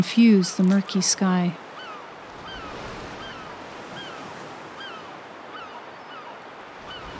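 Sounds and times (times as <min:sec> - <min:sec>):
speech: 0:00.0 - 0:01.6
gusting coastal wind with light snow blowing: 0:00.0 - 0:07.1
rough sea surf of the Pentland Firth by the lighthouse near Duncansby Stacks: 0:00.6 - 0:07.1
dense unbroken wash of crashing waves: 0:01.6 - 0:07.1
faint high bird calls over churning water: 0:01.7 - 0:07.1.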